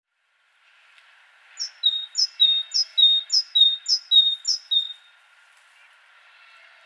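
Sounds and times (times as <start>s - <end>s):
great tit Parus major singing: 1.6s - 5.1s.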